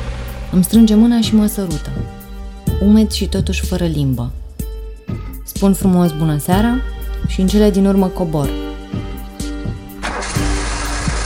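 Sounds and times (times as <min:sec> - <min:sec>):
car engine cranking and starting into idle: 0:00.0 - 0:02.7, 0:09.8 - 0:11.2
speech: 0:00.5 - 0:02.2, 0:02.8 - 0:04.4, 0:05.5 - 0:09.1.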